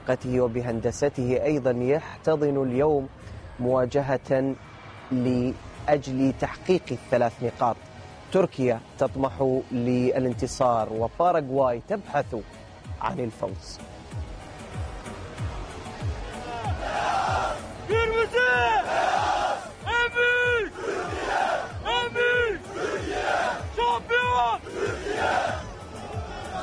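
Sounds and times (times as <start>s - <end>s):
speech: 0.1s - 14.2s
large stadium crowd of football fans chanting in unison: 16.4s - 19.8s, 20.6s - 26.6s.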